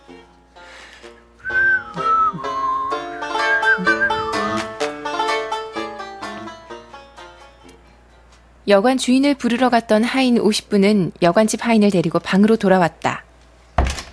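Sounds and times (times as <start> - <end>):
light music-like harmonics: 1.2 - 8.4
person whistling a tune in clear bright notes: 1.4 - 4.8
speech: 8.7 - 13.2.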